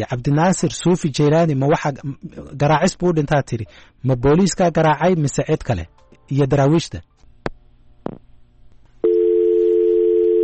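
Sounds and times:
speech: 0.0 - 7.1, 8.0 - 8.2
steady telephone line tone after a call is cut off: 9.0 - 10.4.

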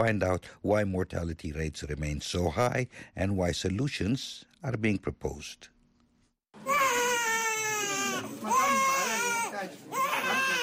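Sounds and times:
speech: 0.0 - 5.7
newborn baby girl crying: 6.6 - 10.6.

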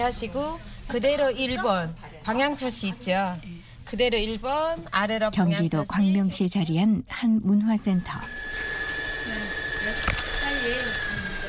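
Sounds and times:
speech: 0.0 - 8.7
sewing machine humming: 8.0 - 11.4.

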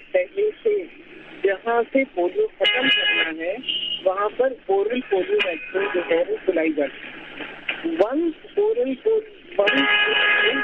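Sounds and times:
man talking over a muffled phone line: 0.0 - 6.9, 7.8 - 10.6
street noise: 0.0 - 10.6
speech: 0.2 - 10.6
car horn blaring in street: 2.6 - 4.0, 9.6 - 10.6.

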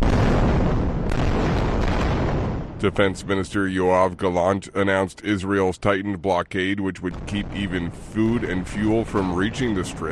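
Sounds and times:
explosions over Gaza at night during military strikes: 0.0 - 4.5, 7.0 - 10.0
speech: 2.8 - 10.0.

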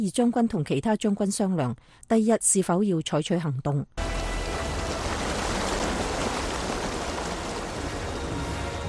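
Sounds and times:
speech: 0.0 - 4.2
heavy rainstorm pouring down: 4.0 - 8.8.

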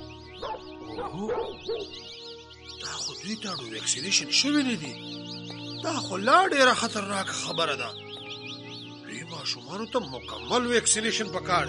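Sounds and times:
dog barking: 0.4 - 1.9
speech: 0.8 - 8.0, 9.3 - 11.6.

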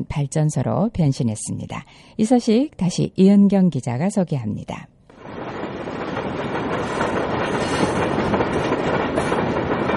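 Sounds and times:
speech: 0.0 - 5.0
train rumbling on rails: 5.1 - 9.9.

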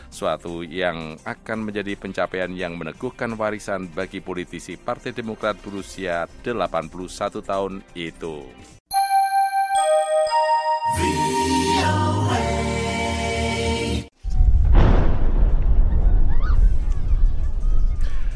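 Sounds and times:
speech: 0.2 - 8.8
chiming electronic tones: 8.9 - 13.5
loud explosion after airstrike with deep sustained rumble: 14.2 - 18.0.

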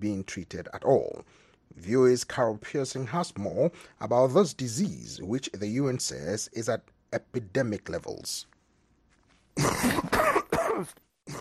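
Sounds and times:
speech: 0.0 - 8.5, 9.6 - 10.2, 10.8 - 11.3
person coughing harshly: 9.6 - 11.3.

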